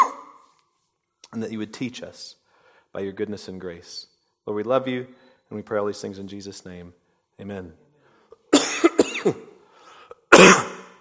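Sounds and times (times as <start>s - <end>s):
person coughing harshly: 0.0s - 0.4s, 8.5s - 10.9s
speech: 1.3s - 7.8s, 9.2s - 9.4s.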